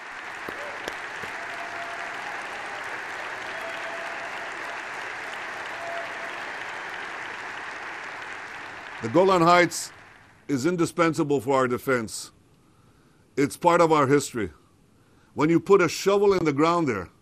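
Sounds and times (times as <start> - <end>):
audience applause for the formal US recognition of Israel's sovereignty over the Golan Heights: 0.0 - 10.4
speech: 9.0 - 12.4, 13.4 - 14.6, 15.4 - 17.1.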